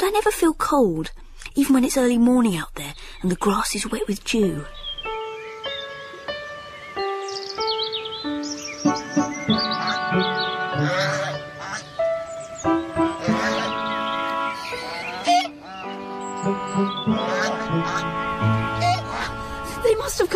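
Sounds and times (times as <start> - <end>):
speech: 0.0 - 4.8
flock of geese honking on a lawn: 5.8 - 20.3.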